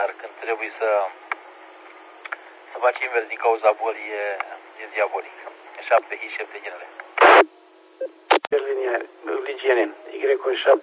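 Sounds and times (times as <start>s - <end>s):
speech: 0.0s - 1.3s, 2.8s - 10.8s
radio static bursts: 7.2s - 7.5s, 8.3s - 8.5s
tone blip transmitted through radio repeater: 7.2s - 7.5s.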